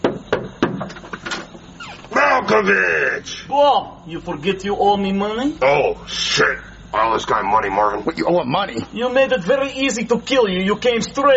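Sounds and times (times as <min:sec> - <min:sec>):
knocking on a house door: 0:00.0 - 0:01.0
speech: 0:02.5 - 0:11.3.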